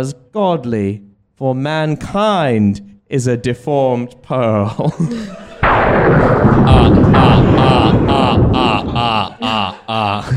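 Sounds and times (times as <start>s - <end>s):
speech: 0.0s - 10.3s
laughter: 4.7s - 10.3s
rolling rumble of thunder: 5.6s - 9.4s.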